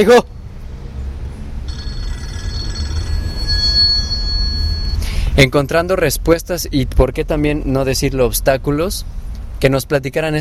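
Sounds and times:
speech: 0:00.0 - 0:00.4, 0:05.4 - 0:10.3
low constant rumble: 0:01.4 - 0:10.3
telephone ringing: 0:01.7 - 0:05.0.

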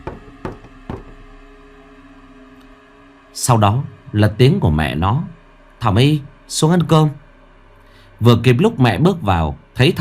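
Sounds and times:
knocking on a door: 0:00.0 - 0:01.3
speech: 0:03.4 - 0:07.2, 0:08.2 - 0:09.9.

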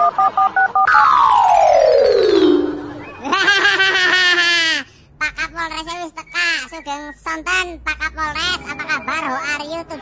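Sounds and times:
dual-tone beeps from a telephone keypad being dialed: 0:00.0 - 0:00.9
long loud synthetic tone sliding downward: 0:00.9 - 0:03.3
wobbling buzzy electronic effect: 0:00.9 - 0:03.3
laughter: 0:02.4 - 0:04.9, 0:08.2 - 0:09.7.

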